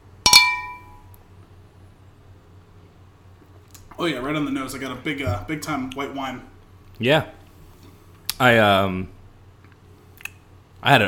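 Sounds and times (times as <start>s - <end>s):
beer glasses clinking in a toast: 0.3s - 1.1s
speech: 4.0s - 7.4s, 8.4s - 9.2s, 10.8s - 11.0s.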